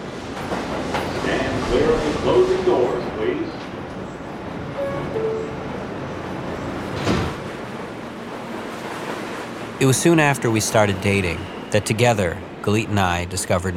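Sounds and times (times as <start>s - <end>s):
subway train rumbling: 0.0s - 13.7s
speech: 1.7s - 3.6s, 9.8s - 13.7s
faint squeals of subway rails: 4.7s - 7.0s, 10.4s - 12.1s.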